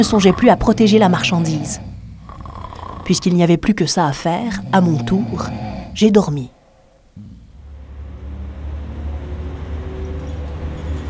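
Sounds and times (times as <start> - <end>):
speech: 0.0 - 2.0, 3.1 - 6.6
bus engine starting up and running: 0.0 - 6.2, 7.2 - 11.0.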